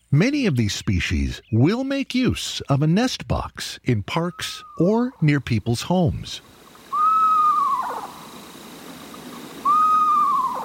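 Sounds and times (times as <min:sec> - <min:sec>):
speech: 0:00.1 - 0:06.6
screech owl giving quavering calls: 0:04.3 - 0:04.9, 0:06.8 - 0:10.6.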